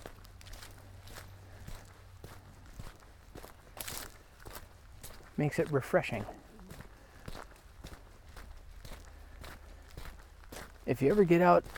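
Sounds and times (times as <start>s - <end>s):
hiker footsteps crunching along a hiking trail: 0.0s - 11.7s
speech: 5.4s - 6.4s, 10.9s - 11.7s.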